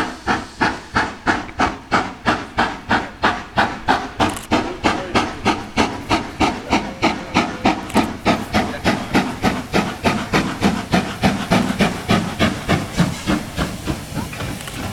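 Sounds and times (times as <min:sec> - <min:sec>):
steam locomotive chuffing with hissing puffs: 0:00.0 - 0:14.9.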